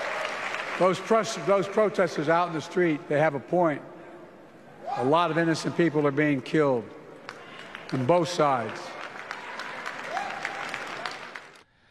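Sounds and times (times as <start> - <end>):
faint crowd cheering: 0.0 - 1.5, 7.3 - 11.6
large crowd clapping: 0.0 - 1.8, 5.6 - 11.7
speech: 0.8 - 3.9, 5.0 - 7.0, 7.9 - 8.9.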